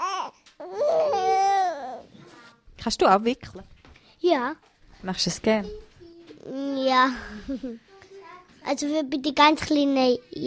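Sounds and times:
baby girl crying and fussing: 0.0s - 2.1s
speech: 2.8s - 5.8s, 6.4s - 7.9s, 8.6s - 10.4s.

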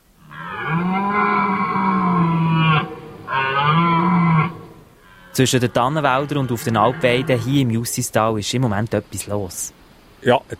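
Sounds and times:
red deer stag roaring during the rut in the Justistal valley: 0.2s - 7.7s
speech: 5.4s - 10.5s.

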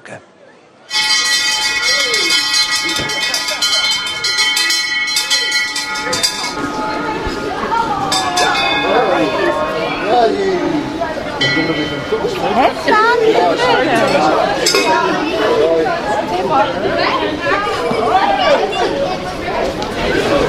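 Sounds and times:
hand bells ringing in welcome: 0.9s - 15.3s
excited chatter and voices of a busy crowd: 0.9s - 20.4s.

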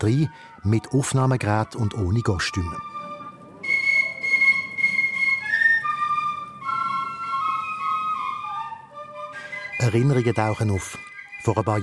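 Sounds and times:
speech: 0.0s - 2.9s, 9.8s - 11.8s
group of Fasnacht piccolo players playing a lively march: 1.7s - 10.6s.

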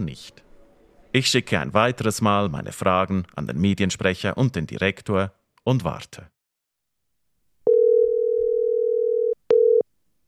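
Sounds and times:
speech: 0.0s - 0.4s, 1.1s - 6.4s
telephone ringing tone of an outgoing call: 7.7s - 9.8s.

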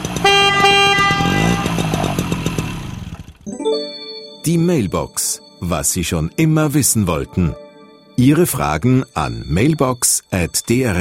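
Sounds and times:
rough car engine revving: 0.0s - 3.4s
car horn honking from a fast car: 0.1s - 2.3s
speech: 4.4s - 7.6s, 8.2s - 10.9s.

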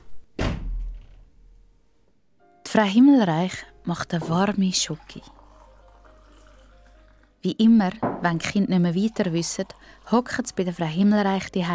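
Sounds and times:
girl slamming a heavy bedroom door shut: 0.4s - 1.5s
speech: 2.7s - 5.4s, 7.4s - 11.7s.

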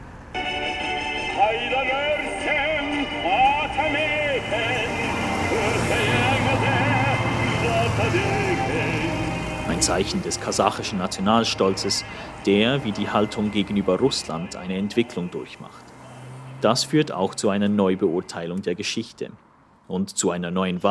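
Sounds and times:
city street traffic at pedestrian crossing in Kazakhstan: 0.0s - 20.9s
patriotic pop song from traffic-light push button speaker in Kazakhstan: 0.4s - 15.7s
speech: 9.7s - 15.9s, 16.6s - 20.9s.

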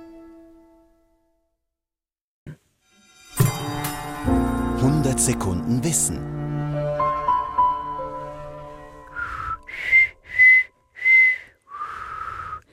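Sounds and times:
soft low sustained musical tones: 3.0s - 11.0s
speech: 5.2s - 6.4s
person whistling a short tune: 9.1s - 12.7s.

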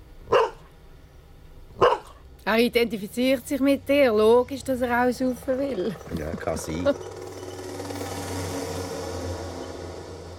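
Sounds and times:
dog giving short sharp yaps: 0.3s - 0.7s, 1.8s - 2.2s
speech: 2.4s - 7.2s
laughter: 5.8s - 7.0s.

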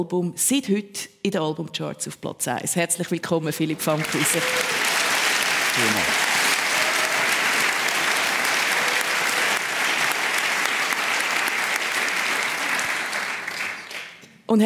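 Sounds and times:
speech: 0.0s - 4.8s, 5.8s - 6.3s
studio audience applauding as a guest is welcomed: 3.6s - 14.2s.

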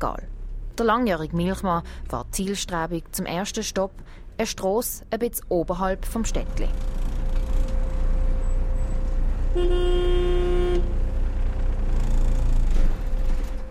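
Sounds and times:
speech: 0.0s - 7.0s, 9.5s - 10.0s
light street ambience: 0.0s - 13.6s
delivery van horn blast: 9.5s - 11.0s.

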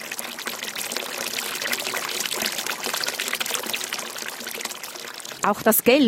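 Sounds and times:
water flowing through cast-iron channels: 0.0s - 6.0s
speech: 5.5s - 6.0s.

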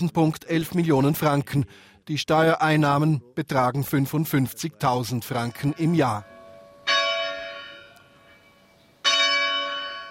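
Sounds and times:
speech: 0.0s - 6.3s
church bell striking: 5.3s - 10.1s.

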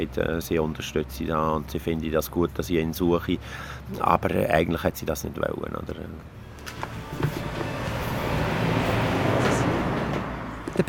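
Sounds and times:
speech: 0.0s - 6.9s
car driving past outside the house: 6.3s - 10.8s.

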